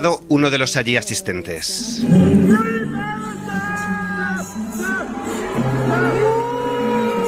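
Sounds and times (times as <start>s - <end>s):
speech: 0.0s - 5.0s
large crowd booing: 2.0s - 7.2s.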